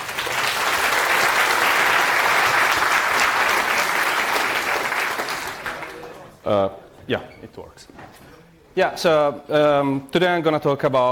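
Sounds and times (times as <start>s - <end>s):
audience applause: 0.0s - 6.2s
speech: 6.5s - 11.1s.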